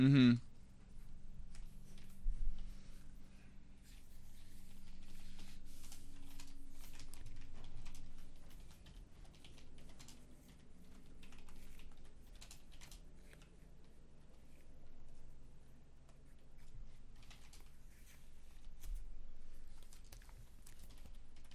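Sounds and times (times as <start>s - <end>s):
speech: 0.0s - 0.5s
low hum: 0.0s - 21.5s
typing on a keyboard: 5.8s - 15.2s, 16.0s - 17.8s, 19.7s - 21.5s.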